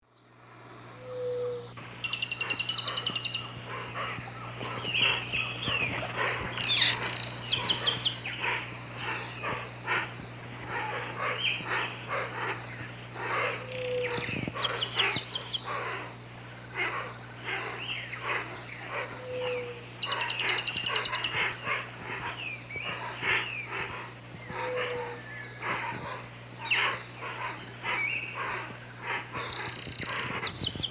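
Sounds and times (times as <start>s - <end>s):
Agelasticus xanthophthalmus calling and singing in South America Eastern Lowlands: 1.0s - 16.1s, 16.8s - 30.8s.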